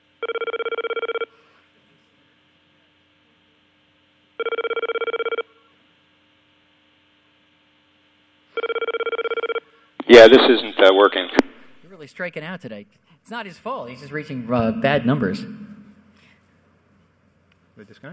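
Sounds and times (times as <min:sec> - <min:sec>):
telephone ringing with a foreign-style ring tone on a fax line: 0:00.2 - 0:01.3, 0:04.4 - 0:05.5, 0:08.6 - 0:09.7
speech: 0:10.1 - 0:15.6, 0:17.8 - 0:18.1.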